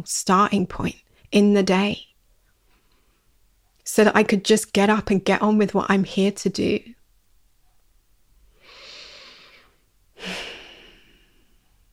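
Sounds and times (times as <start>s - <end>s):
speech: 0.0s - 2.1s, 3.9s - 7.0s
person taking slow quiet breaths: 8.5s - 11.8s.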